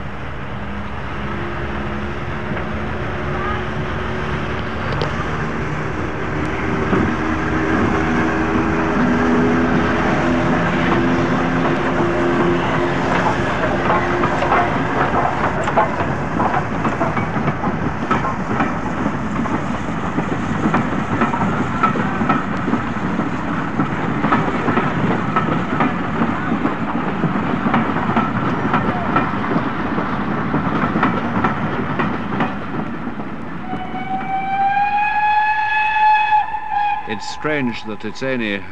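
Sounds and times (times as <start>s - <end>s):
electric locomotive towing steam locomotive rumbling: 0.0s - 38.7s
whine of an electric locomotive's gearing: 0.2s - 27.2s, 33.3s - 38.7s
speech: 37.4s - 38.7s.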